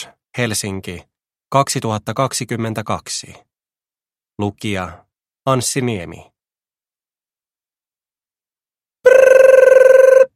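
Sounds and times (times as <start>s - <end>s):
speech: 0.0s - 3.5s, 4.4s - 6.3s
telephone bell ringing frantically in an office: 9.1s - 10.3s.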